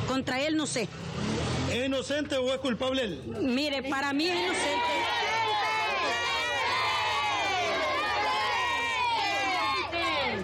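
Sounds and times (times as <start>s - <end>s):
speech: 0.2s - 5.2s
dense crowd shouting and yelling in protest: 4.1s - 10.4s.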